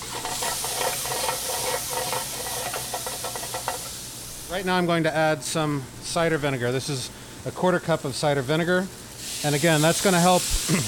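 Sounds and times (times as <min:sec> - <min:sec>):
ginger and chopped fresh garlic sizzling in a hot pan with okra: 0:00.0 - 0:04.8, 0:09.0 - 0:10.8
speech: 0:04.5 - 0:10.8.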